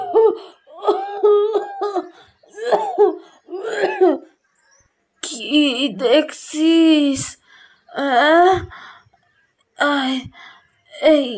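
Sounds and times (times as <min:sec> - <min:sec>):
old woman coughing hard: 0:00.8 - 0:04.3
speech: 0:05.9 - 0:08.8, 0:11.0 - 0:11.3.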